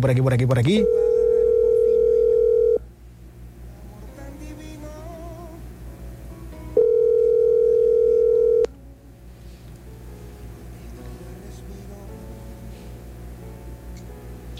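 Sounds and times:
speech: 0.0s - 1.1s
single-pitched telephone line tone of an outgoing call: 0.7s - 2.8s, 6.8s - 8.7s.

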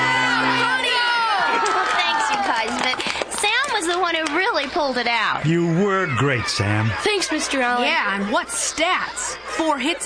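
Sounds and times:
group of voices cheering for their coach: 0.0s - 4.8s, 5.5s - 10.0s
laughter: 0.4s - 3.4s, 5.6s - 10.0s
scattered clapping: 1.4s - 4.9s
speech: 4.6s - 10.0s.

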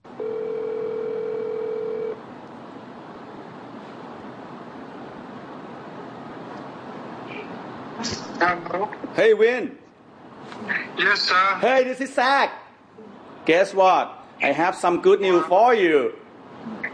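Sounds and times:
continuous rushing hiss: 0.0s - 16.9s
telephone tone of an outgoing call: 0.1s - 2.2s
speech: 8.0s - 9.8s, 11.0s - 12.6s, 13.5s - 16.2s.

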